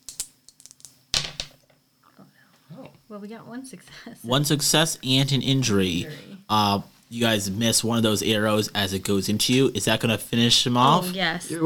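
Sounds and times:
dice being rolled for a tabletop game turn: 0:00.1 - 0:01.7
speech: 0:03.1 - 0:11.6.

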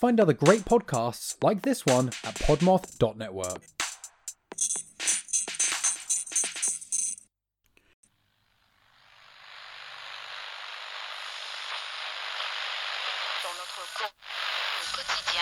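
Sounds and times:
speech: 0:00.0 - 0:03.8
crackling radio static: 0:08.6 - 0:15.4.

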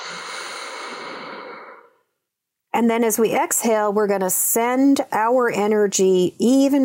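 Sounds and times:
deep inhale through the nose during a guided breathing exercise: 0:00.0 - 0:02.1
speech: 0:02.8 - 0:06.8.

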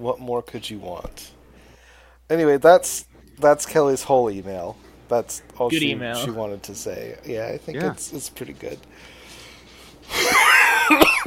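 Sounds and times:
speech: 0:00.0 - 0:01.4, 0:02.3 - 0:09.2, 0:10.9 - 0:11.2
harsh raspy wheezing cough: 0:10.2 - 0:11.2.

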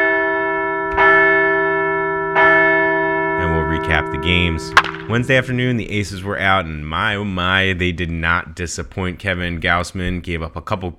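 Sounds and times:
large bell ringing with sustained metallic hum: 0:00.0 - 0:07.1
speech: 0:03.8 - 0:10.9.

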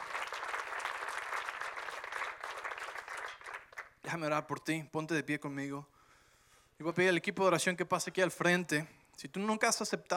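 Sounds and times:
audience applauding: 0:00.0 - 0:04.0
speech: 0:04.1 - 0:05.9, 0:06.8 - 0:10.1.

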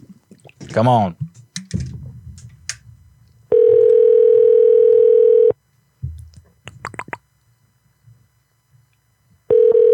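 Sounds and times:
speech: 0:00.7 - 0:01.2
ringback tone of an outgoing telephone call: 0:03.5 - 0:05.6, 0:09.5 - 0:09.9.

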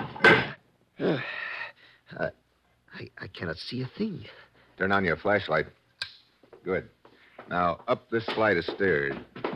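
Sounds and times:
heavy door banging shut: 0:00.2 - 0:00.6
speech: 0:02.2 - 0:02.4, 0:03.0 - 0:05.8, 0:06.6 - 0:09.4
soft knocks and shuffles: 0:06.4 - 0:09.5.

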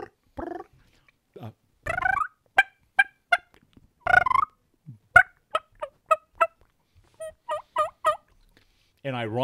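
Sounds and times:
turkey yelps and clucks on a mouth diaphragm call: 0:01.9 - 0:08.3.

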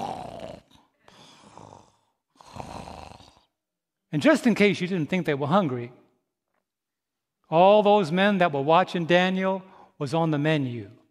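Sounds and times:
lion deep rumbling purr-growl: 0:00.0 - 0:00.8, 0:01.5 - 0:03.5
speech: 0:04.1 - 0:06.0, 0:07.5 - 0:11.0.

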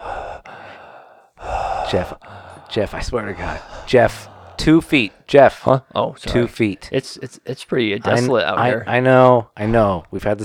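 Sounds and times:
heavy breathing against the ear: 0:00.0 - 0:05.3
speech: 0:01.9 - 0:10.4.

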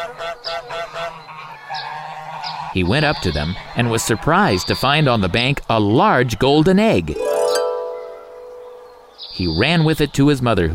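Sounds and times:
goose and gander honking loudly: 0:00.0 - 0:02.8
speech: 0:02.8 - 0:07.3, 0:09.4 - 0:10.7.

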